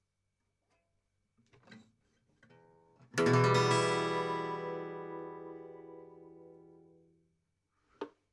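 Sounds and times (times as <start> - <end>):
soft string pluck: 3.2 - 6.7
E minor chord strummed on a stringed instrument: 3.2 - 6.9.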